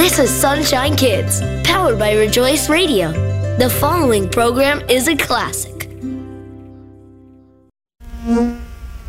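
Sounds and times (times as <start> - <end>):
speech: 0.1 - 5.7
bee buzzing: 8.0 - 9.0.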